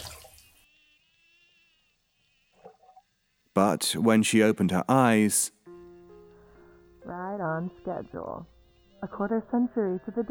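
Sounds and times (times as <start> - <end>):
bathwater sloshing and splashing as a woman dunks her head: 0.0 - 0.6
speech: 3.6 - 5.6, 7.5 - 10.2.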